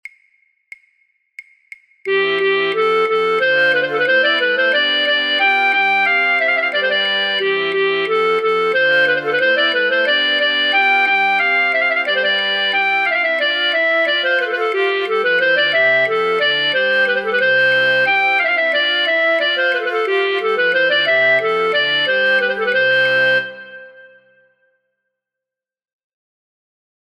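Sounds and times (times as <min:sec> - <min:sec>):
flute choir playing a branle practice track: 0:02.1 - 0:24.4.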